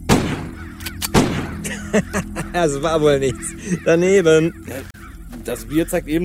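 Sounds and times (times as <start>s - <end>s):
pistol shots fired at crows: 0.0s - 1.6s
laughter: 1.6s - 4.9s
speech: 1.9s - 6.2s.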